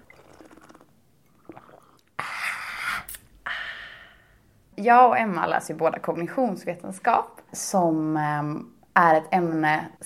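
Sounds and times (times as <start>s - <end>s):
person slurping a hot coffee: 0.0s - 3.3s
soft mouth and cup sounds: 0.0s - 3.3s
speech: 4.8s - 10.0s.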